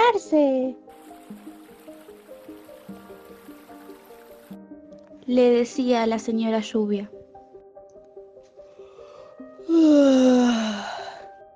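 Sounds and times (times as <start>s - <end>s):
speech: 5.3s - 7.2s
storyteller voicing a slow drawn-out yawn: 9.7s - 11.2s.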